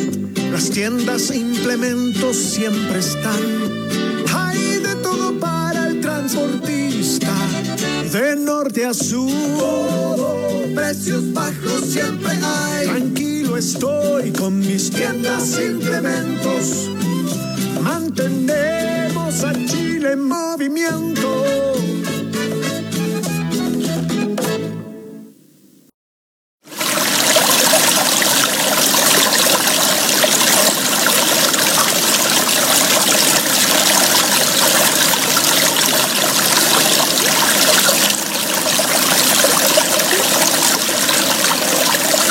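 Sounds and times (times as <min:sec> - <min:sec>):
river water flowing: 0:00.0 - 0:08.2, 0:09.3 - 0:19.9, 0:26.7 - 0:42.2
music: 0:00.0 - 0:25.4
speech: 0:00.5 - 0:05.5, 0:06.3 - 0:21.9.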